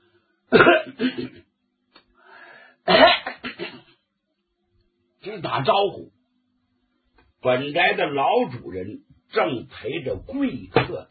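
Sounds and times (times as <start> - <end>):
person giving polite coughs and throat-clearings outside a study door: 0.5 - 1.5, 2.9 - 3.9
speech: 0.5 - 1.5, 5.5 - 6.1, 7.4 - 11.0.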